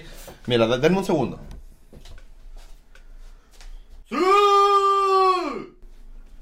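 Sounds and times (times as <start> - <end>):
quiet shuffling: 0.0 - 4.1, 5.8 - 6.4
speech: 0.5 - 1.5
man shouting loudly: 4.1 - 5.8.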